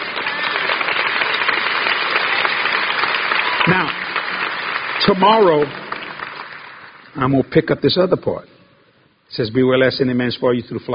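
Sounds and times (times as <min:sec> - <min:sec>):
sizable crowd applauding: 0:00.0 - 0:07.5
speech: 0:03.7 - 0:04.0, 0:05.0 - 0:05.8, 0:07.2 - 0:08.5, 0:09.3 - 0:10.9.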